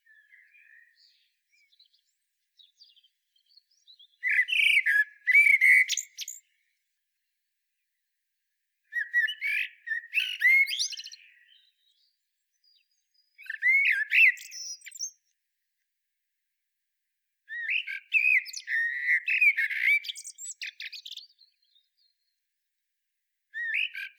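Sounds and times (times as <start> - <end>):
Eurasian blackbird Turdus merula singing: 0.0 - 6.7, 8.9 - 15.3, 17.5 - 22.4, 23.6 - 24.1.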